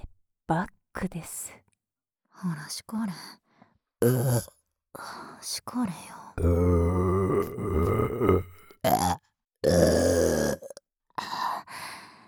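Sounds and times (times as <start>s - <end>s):
speech: 0.5s - 1.6s, 2.4s - 3.4s, 4.0s - 10.0s
person burping loud drawn-out croaky burps: 4.0s - 4.5s, 6.4s - 10.8s.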